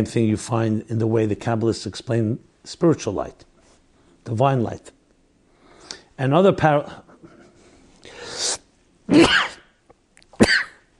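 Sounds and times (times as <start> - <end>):
speech: 0.0 - 3.5, 4.2 - 5.0, 6.2 - 7.0, 9.1 - 9.4
person sneezing: 8.1 - 9.8, 10.4 - 10.9.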